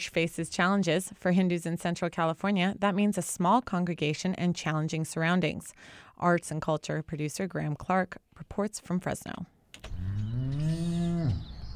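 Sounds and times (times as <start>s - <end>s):
speech: 0.0s - 9.9s
cattle mooing at a cattle ranch and slaughterhouse in Central California: 9.9s - 11.7s.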